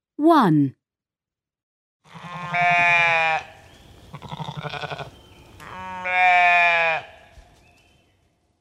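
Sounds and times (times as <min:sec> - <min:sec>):
speech: 0:00.2 - 0:00.8
sheep bleating loudly: 0:02.0 - 0:07.3.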